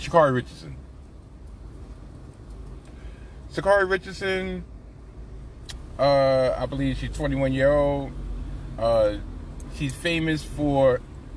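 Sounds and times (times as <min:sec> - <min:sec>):
road noise heard from inside a moving car: 0:00.0 - 0:11.3
speech: 0:00.1 - 0:00.8, 0:03.5 - 0:04.7, 0:06.0 - 0:08.2, 0:08.8 - 0:11.1.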